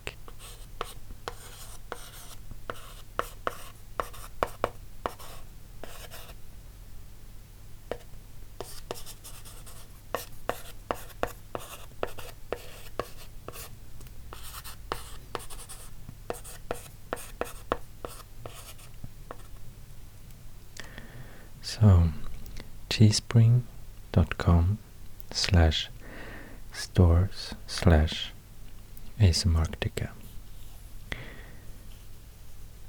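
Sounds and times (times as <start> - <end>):
pen writing on paper: 0.3 - 6.3, 7.9 - 13.7, 14.3 - 19.5
speech: 21.7 - 22.2, 23.0 - 23.7, 24.4 - 25.9, 27.0 - 28.3, 29.2 - 30.2.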